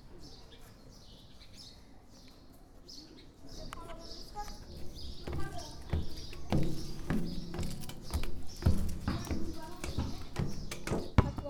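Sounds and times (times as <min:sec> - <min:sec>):
birds chirping in a garden: 0:00.0 - 0:11.4
faint voices: 0:01.7 - 0:11.4
soft knocks or rustles as clay balls are picked up: 0:04.8 - 0:11.4.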